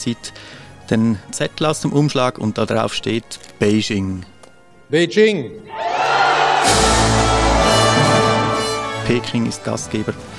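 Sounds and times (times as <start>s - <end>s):
speech: 0.0s - 4.3s, 4.9s - 7.2s, 9.1s - 10.3s
delegation crowd cheering and shouting at a host city announcement: 5.7s - 8.7s.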